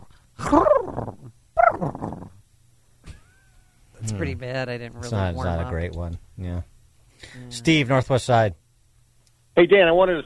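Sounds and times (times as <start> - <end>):
person imitating a turkey gobble with the voice: 0.4 - 2.4
speech: 0.5 - 0.7, 4.3 - 8.6, 9.6 - 10.2.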